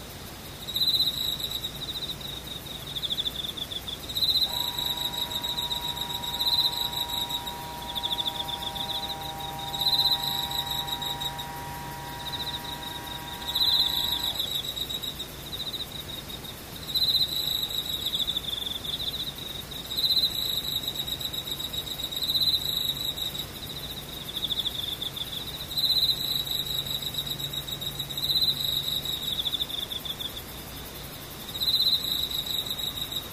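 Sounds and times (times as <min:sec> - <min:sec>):
insects trilling in bright pulsing chirps: 0:00.0 - 0:33.3
faint steady mid-pitched tone: 0:04.4 - 0:14.5
low hum: 0:04.4 - 0:14.5.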